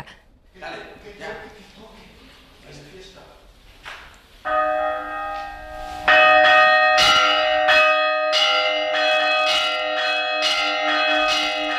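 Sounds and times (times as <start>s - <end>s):
church bells rung in a traditional pattern: 4.4s - 11.7s.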